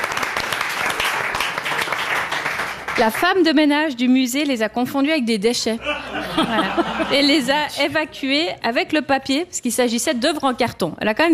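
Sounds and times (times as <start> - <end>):
audience applause for a correct answer in a quiz: 0.0 - 3.3
speech: 3.0 - 11.3
laughter: 5.8 - 7.8.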